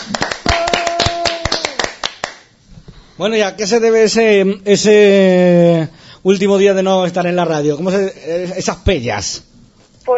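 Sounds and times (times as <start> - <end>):
applause with scattered hand clapping: 0.0 - 2.5
speech: 3.2 - 10.1.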